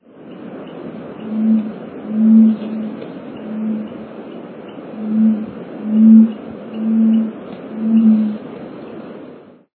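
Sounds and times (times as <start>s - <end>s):
peacock calling: 0.7s - 8.5s.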